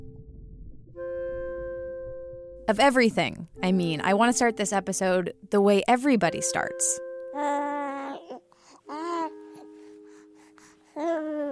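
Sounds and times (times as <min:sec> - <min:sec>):
speech: 0:02.7 - 0:07.6
newborn baby crying: 0:07.4 - 0:09.8, 0:10.9 - 0:11.5
newborn baby whimpering: 0:07.4 - 0:11.5.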